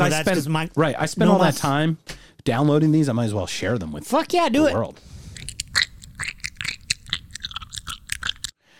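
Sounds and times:
speech: 0:00.0 - 0:05.5
loud wet chewing with squelching crunchy bites and smacks: 0:05.2 - 0:08.6.

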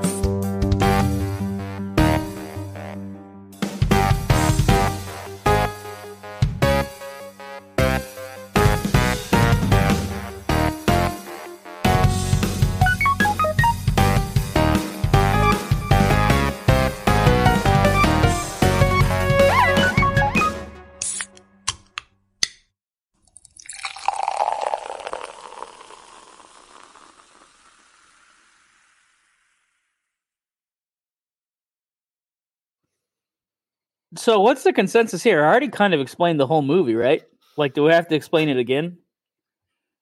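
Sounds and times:
upbeat podcast theme song music: 0:00.0 - 0:22.0
speech: 0:34.2 - 0:39.0.

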